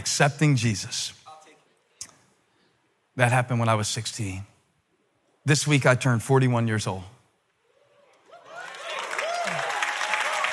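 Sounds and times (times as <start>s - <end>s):
speech: 0.0s - 1.2s, 3.2s - 4.5s, 5.4s - 7.2s
modest audience applause: 8.3s - 10.5s.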